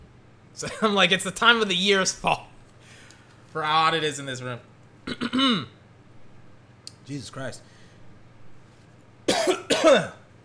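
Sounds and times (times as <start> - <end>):
speech: 0.6 - 2.5, 3.6 - 5.8, 7.1 - 7.7, 9.8 - 10.2
person coughing harshly with phlegm in the throat: 5.0 - 5.8, 9.3 - 10.3.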